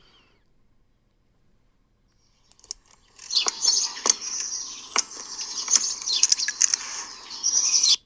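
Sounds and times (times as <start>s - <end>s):
birds chirping in a dense high-pitched chorus: 2.1s - 8.0s
sharp little clicks and ticks: 2.1s - 8.0s.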